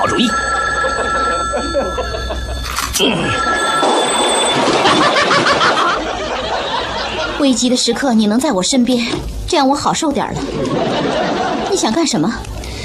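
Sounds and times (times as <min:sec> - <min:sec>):
speech: 0:00.0 - 0:02.4, 0:03.0 - 0:03.8, 0:07.4 - 0:12.6
telephone bell ringing: 0:00.0 - 0:06.0
laughter: 0:00.8 - 0:02.6, 0:04.6 - 0:07.6, 0:10.4 - 0:11.9.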